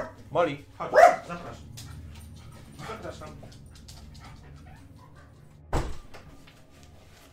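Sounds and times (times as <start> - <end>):
dog barking: 0.0 - 0.2, 0.9 - 1.5
steady low hum: 0.0 - 7.3
speech: 0.4 - 1.8, 2.8 - 3.6
dog panting: 0.9 - 5.7.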